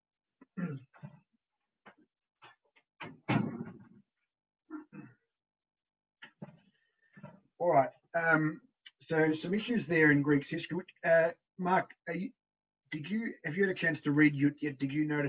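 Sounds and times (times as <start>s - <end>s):
door being handled and shut with knocks, rattles and thuds: 3.0s - 3.9s
speech: 7.7s - 15.2s.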